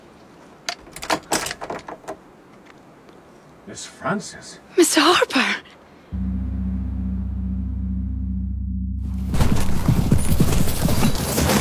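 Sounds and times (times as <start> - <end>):
speech: 3.7 - 5.6
low rumbling background: 6.2 - 10.1
several horses' hooves clip-clopping: 9.3 - 11.6.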